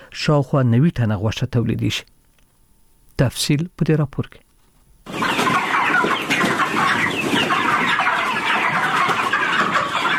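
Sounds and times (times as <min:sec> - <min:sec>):
speech: 0:00.2 - 0:02.2, 0:03.2 - 0:04.4
thousands of broiler chickens clucking on a poultry farm in Dand district: 0:04.8 - 0:10.1.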